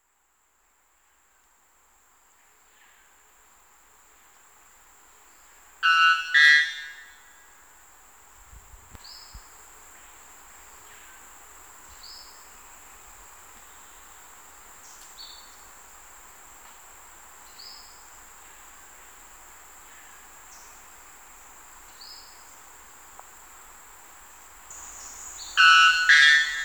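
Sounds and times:
white bellbird calling: 5.8s - 7.0s, 25.6s - 26.6s.

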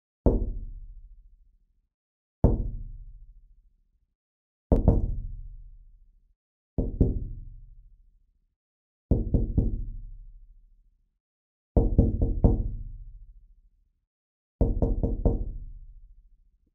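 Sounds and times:
knocking on window: 2.4s - 2.8s, 4.7s - 5.2s, 6.8s - 7.2s, 9.1s - 9.8s, 11.8s - 12.8s, 14.6s - 15.5s.

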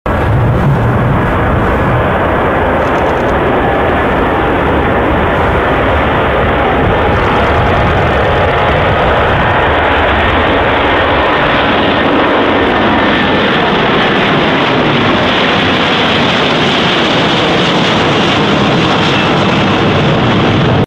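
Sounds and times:
Airbus Beluga aircraft: 0.0s - 20.8s.

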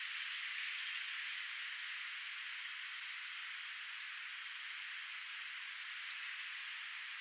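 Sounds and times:
faint hiss: 0.0s - 7.1s
Blue-gray gnatcatcher call, a single thin high note: 6.1s - 6.5s.

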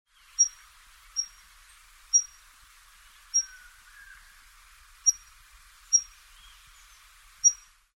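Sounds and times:
scaled flowerpiercer calling: 0.2s - 1.5s, 2.1s - 2.4s, 3.2s - 4.4s, 5.0s - 7.7s.

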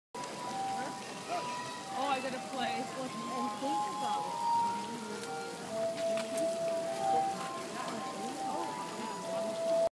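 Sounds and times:
glass harmonica: 0.4s - 9.9s.

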